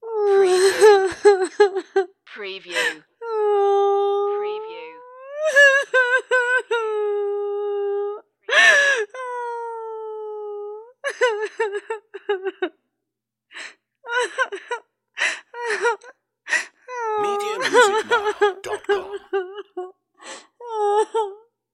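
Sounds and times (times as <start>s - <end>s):
woman sobbing: 0.0s - 4.4s, 5.0s - 12.8s, 13.6s - 21.5s
laughter: 17.2s - 19.6s.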